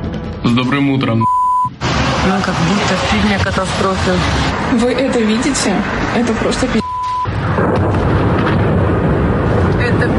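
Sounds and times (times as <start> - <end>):
speech: 0.2 - 1.4, 2.3 - 6.8
car alarms set off by explosions: 6.8 - 7.3
explosions booming across a city: 7.2 - 10.1.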